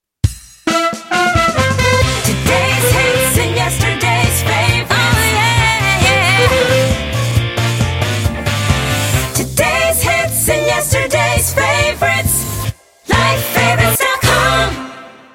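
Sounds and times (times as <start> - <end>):
slogan jingle music: 1.2 - 15.3.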